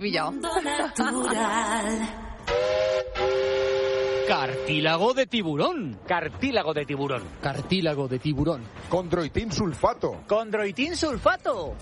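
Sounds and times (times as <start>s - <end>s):
speech: 0.0s - 3.3s, 4.3s - 11.8s
steam train whistle sound effect: 2.4s - 5.0s.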